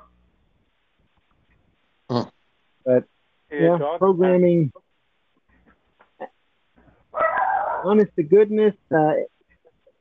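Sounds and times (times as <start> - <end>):
speech: 2.9 - 4.8, 7.8 - 9.3
dog yelping: 7.2 - 7.9.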